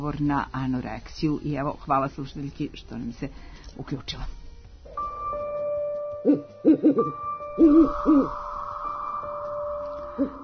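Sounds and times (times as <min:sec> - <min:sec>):
speech: 0:00.0 - 0:04.4, 0:06.2 - 0:08.4, 0:10.2 - 0:10.4
owl hooting: 0:06.3 - 0:10.4.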